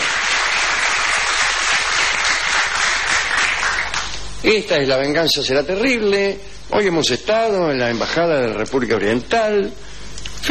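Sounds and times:
crowd applauding: 0.0s - 4.3s
speech: 4.4s - 10.4s.

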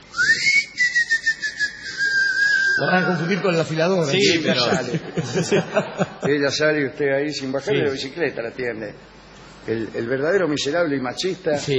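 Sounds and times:
person whistling to call someone: 0.1s - 3.0s
speech: 2.8s - 11.7s
laughter: 4.1s - 6.7s.

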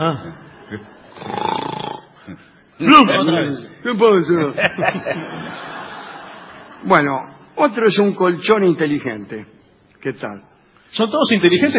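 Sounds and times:
laughter: 0.0s - 1.2s, 4.3s - 7.3s
speech: 0.0s - 1.5s, 2.3s - 5.7s, 6.8s - 11.7s
person imitating snoring: 1.1s - 2.2s.

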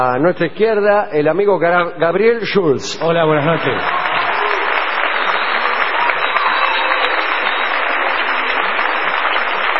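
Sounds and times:
speech: 0.0s - 4.1s
audience applause: 3.1s - 9.7s.

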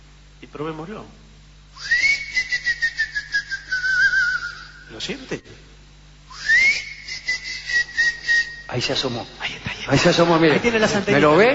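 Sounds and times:
speech: 0.4s - 1.2s, 4.9s - 5.7s, 8.7s - 11.5s
person whistling to lure a cricket: 1.8s - 4.9s, 6.3s - 8.7s
laughter: 9.6s - 11.5s.

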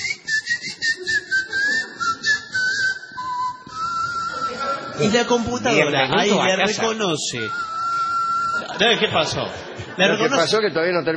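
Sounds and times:
person whistling a short wavering melody: 0.0s - 5.5s, 7.3s - 8.7s
laughter: 1.0s - 2.6s, 8.4s - 10.7s
speech: 5.0s - 7.8s, 8.8s - 11.1s.

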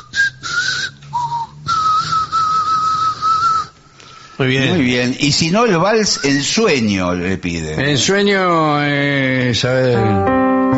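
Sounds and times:
man whistling a song's chorus: 0.0s - 3.8s
speech: 4.4s - 10.6s.

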